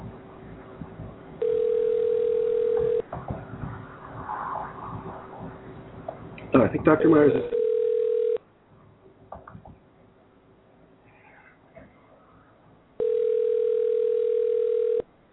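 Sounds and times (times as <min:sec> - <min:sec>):
telephone ringback tone heard over the line: 0:01.4 - 0:03.0, 0:07.5 - 0:08.4, 0:13.0 - 0:15.1
speech: 0:06.6 - 0:07.6.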